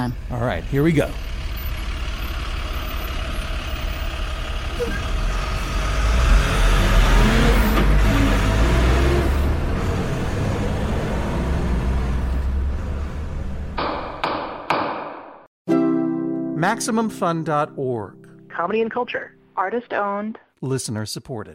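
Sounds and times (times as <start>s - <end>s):
speech: 0.0s - 1.3s, 4.8s - 5.1s, 16.6s - 21.5s
heavy truck engine rumbling and pulling away: 0.0s - 14.4s
sharp knocks: 13.8s - 15.5s.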